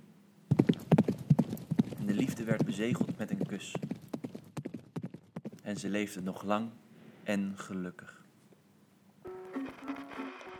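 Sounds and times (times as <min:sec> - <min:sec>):
horse hooves clip-clopping: 0:00.5 - 0:05.9
speech: 0:02.4 - 0:03.9, 0:05.7 - 0:08.2.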